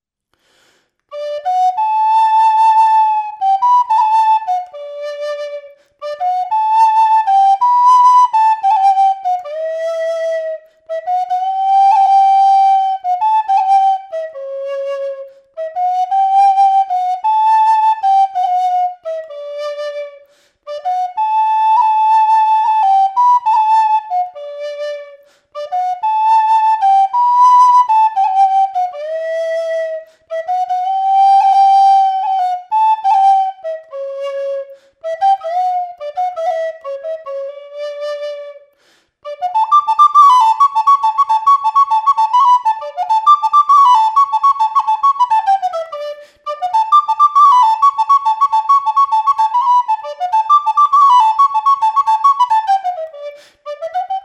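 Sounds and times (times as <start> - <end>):
Galician pito guide whistle: 1.0 - 54.2.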